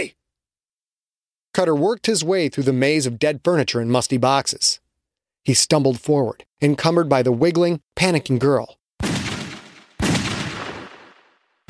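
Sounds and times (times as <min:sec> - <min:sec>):
speech: 0:00.0 - 0:00.2, 0:01.6 - 0:04.8, 0:05.4 - 0:08.8
loud gunshots fired in a cluttered room: 0:09.0 - 0:11.6.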